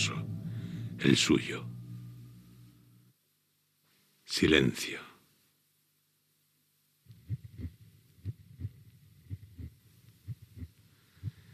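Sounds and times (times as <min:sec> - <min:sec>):
speech: 0:01.0 - 0:01.7, 0:04.3 - 0:05.1
heartbeat thumping in double beats: 0:07.1 - 0:11.5.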